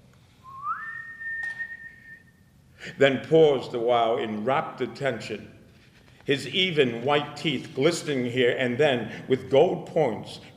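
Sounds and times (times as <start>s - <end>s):
long slow whistle given as a call: 0.4s - 2.4s
speech: 2.8s - 5.6s, 6.3s - 10.5s.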